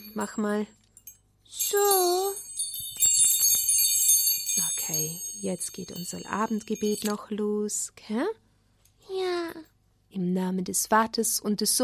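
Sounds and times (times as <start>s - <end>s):
small Advent bell ringing: 0.0s - 7.4s
speech: 0.2s - 0.8s, 1.5s - 2.5s, 4.6s - 8.4s, 9.1s - 11.8s.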